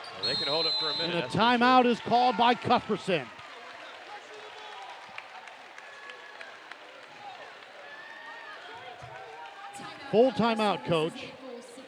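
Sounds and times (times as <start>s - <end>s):
whistles from the crowd: 0.0s - 1.4s
large indoor basketball arena crowd roaring and cheering: 0.0s - 11.1s
speech: 0.3s - 3.4s, 10.1s - 11.4s
scattered claps from the crowd: 1.2s - 10.7s.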